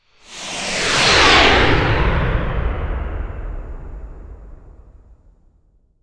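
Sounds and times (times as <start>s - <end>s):
artillery missile flyby deep sonic whoosh: 0.3s - 4.9s.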